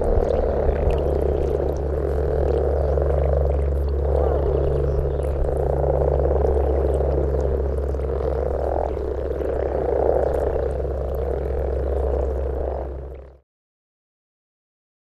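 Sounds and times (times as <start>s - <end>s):
common frogs croaking together in Parc Ela: 0.0s - 13.4s
steady hum: 0.0s - 13.4s.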